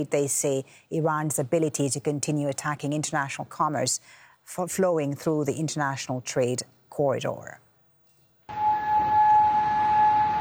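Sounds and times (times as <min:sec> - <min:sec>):
speech: 0:00.0 - 0:07.6
air raid siren wailing: 0:08.5 - 0:10.3.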